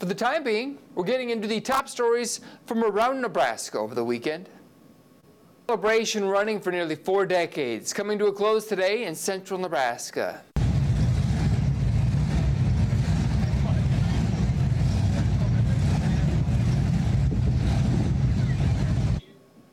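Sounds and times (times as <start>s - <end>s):
speech: 0.0s - 4.6s, 5.7s - 10.5s
classic hot rod engines running: 10.6s - 19.2s
wind noise over the microphone: 10.7s - 19.2s.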